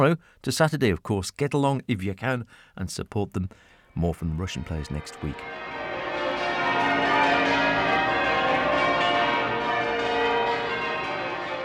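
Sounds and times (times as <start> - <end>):
speech: 0.0 - 5.7
church bells ringing a peal: 4.4 - 11.6.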